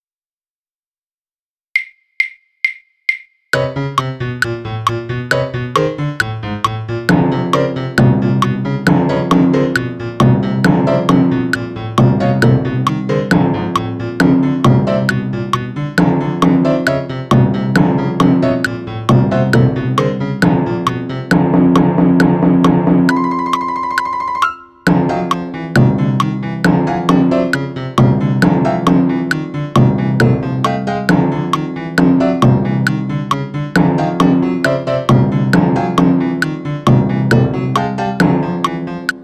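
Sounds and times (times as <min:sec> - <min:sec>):
piano: 0:03.6 - 0:39.2
timpani: 0:03.6 - 0:39.2.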